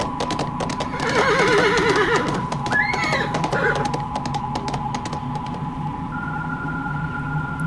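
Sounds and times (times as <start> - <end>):
hoofbeats of a driven horse clattering: 0.0 - 5.6
faint constant hum: 0.0 - 7.6
frightened horse neighing shrilly: 0.8 - 3.9.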